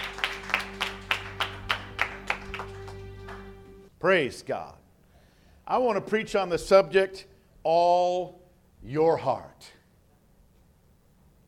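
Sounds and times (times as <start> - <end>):
church audience clapping hands in a steady unified rhythm: 0.0 - 3.9
low constant hum: 0.0 - 11.4
speech: 4.0 - 4.8, 5.7 - 9.8.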